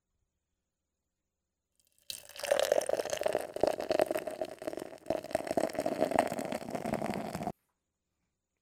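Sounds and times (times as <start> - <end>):
beer pouring into a glass: 2.1 - 7.5.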